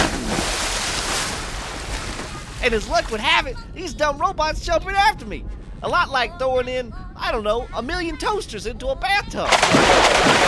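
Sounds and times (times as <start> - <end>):
person diving into a pool: 0.0 - 2.5
speech: 2.6 - 10.4.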